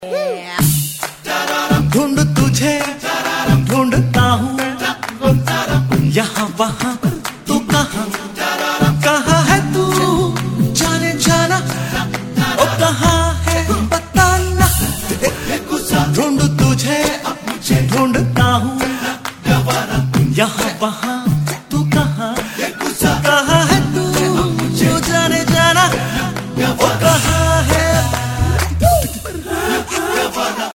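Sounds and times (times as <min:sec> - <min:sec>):
a cappella singing: 0:00.0 - 0:30.7.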